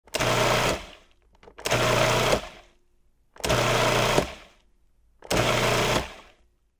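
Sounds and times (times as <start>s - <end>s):
food processor mixer running: 0.1s - 2.7s, 3.4s - 4.6s, 5.2s - 6.4s.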